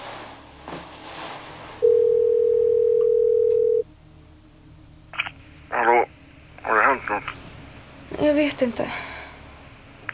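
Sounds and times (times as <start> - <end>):
telephone ringing tone of an outgoing call placed by a voice assistant: 1.8 - 3.8
speech: 8.4 - 9.1.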